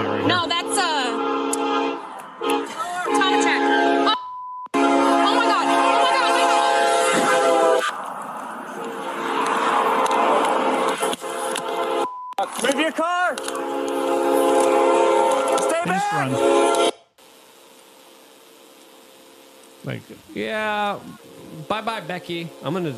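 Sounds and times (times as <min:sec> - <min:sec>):
roar of a passing train: 0:00.0 - 0:04.1, 0:04.8 - 0:12.1, 0:13.3 - 0:16.8, 0:21.2 - 0:22.9
loud train horn blaring in long sustained blasts: 0:00.0 - 0:08.0, 0:08.8 - 0:10.0, 0:10.6 - 0:12.1, 0:13.3 - 0:17.0, 0:21.6 - 0:22.9
speech: 0:00.2 - 0:00.6, 0:16.2 - 0:16.5, 0:19.8 - 0:22.9.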